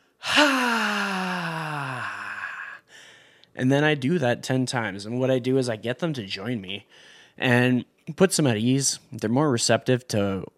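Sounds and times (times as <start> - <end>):
loud voiced exhale used as a breathing exercise: 0.2 - 2.8
deep inhale: 0.2 - 3.5, 6.9 - 7.4
speech: 3.6 - 10.5.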